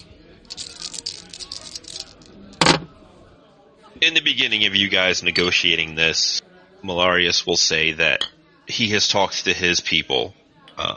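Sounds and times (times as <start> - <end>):
dice rattling and landing on a hard surface: 0.0 - 2.3
murmur: 0.0 - 10.9
speech: 4.0 - 10.9.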